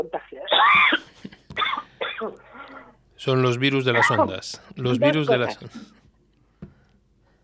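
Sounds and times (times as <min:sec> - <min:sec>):
speech: 0:00.0 - 0:00.3, 0:03.2 - 0:05.9
woman coughing: 0:00.0 - 0:02.4
woman clearing her throat: 0:00.4 - 0:02.4.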